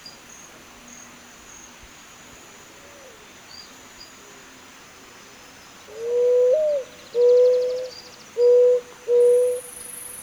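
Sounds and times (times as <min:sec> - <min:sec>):
Zenaida dove four-note cooing phrase: 0:05.9 - 0:09.7.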